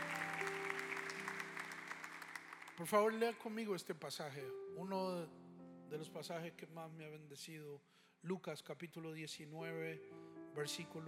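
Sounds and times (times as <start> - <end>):
audience applauding: 0.0 - 3.5
speech: 2.8 - 11.0.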